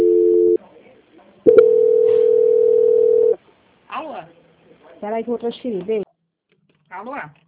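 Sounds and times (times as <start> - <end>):
telephone dial tone after a dropped call: 1.5 - 3.4
speech: 5.0 - 6.0, 7.0 - 7.4.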